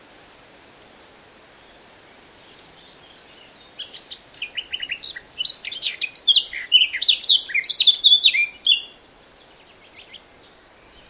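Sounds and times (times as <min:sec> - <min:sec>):
background hiss: 0:00.0 - 0:11.0
Eurasian blackcap song, Sylvia atricapilla, quick warbling notes: 0:02.4 - 0:09.0.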